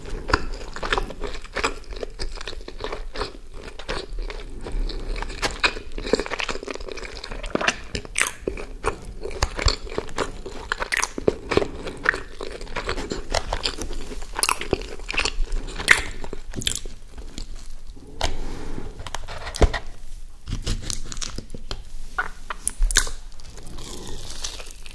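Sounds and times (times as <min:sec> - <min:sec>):
chewing of fried food and a burger: 0:00.0 - 0:18.4, 0:20.5 - 0:24.9.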